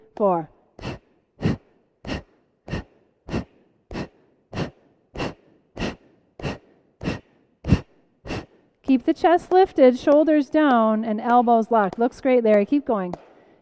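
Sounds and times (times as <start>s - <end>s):
speech: 0.2s - 0.5s, 9.0s - 13.2s
people exhaling sharply during a group breathing exercise: 0.8s - 8.6s.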